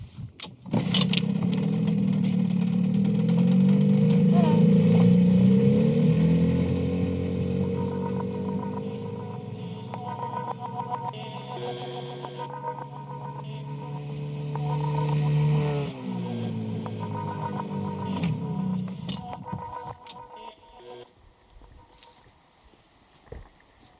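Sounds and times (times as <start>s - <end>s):
boat engine starting and running: 0.9s - 21.0s.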